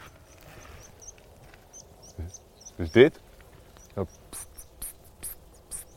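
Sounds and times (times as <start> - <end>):
migrating meadow pipit flight calls: 0.0 - 5.9
speech: 2.8 - 3.2, 4.0 - 4.2.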